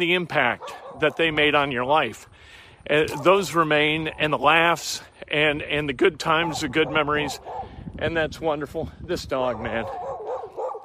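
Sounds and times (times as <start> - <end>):
speech: 0.0 - 10.1
dog barking: 0.5 - 1.4, 6.4 - 7.8, 9.5 - 10.8.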